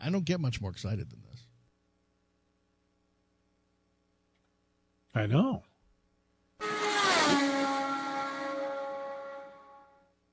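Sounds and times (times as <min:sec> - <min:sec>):
speech: 0:00.0 - 0:01.5, 0:05.2 - 0:05.7
race car engine at high revs on a qualifying lap: 0:06.6 - 0:10.0.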